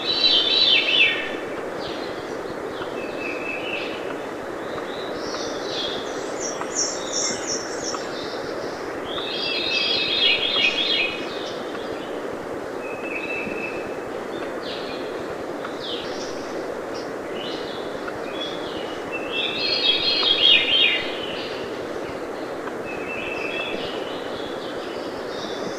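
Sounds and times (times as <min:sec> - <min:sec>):
veery singing shimmering reedy phrases: 0:00.0 - 0:12.2, 0:12.8 - 0:25.7
background hiss: 0:00.0 - 0:25.7.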